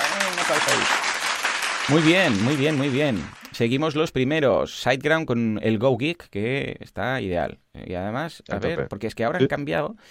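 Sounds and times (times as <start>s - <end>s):
applause sound effect: 0.0s - 3.8s
speech: 0.5s - 1.1s, 1.9s - 10.0s.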